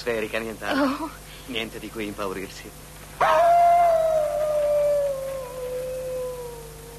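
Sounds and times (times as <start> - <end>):
speech: 0.0 - 3.6
wolf howling: 3.2 - 6.9.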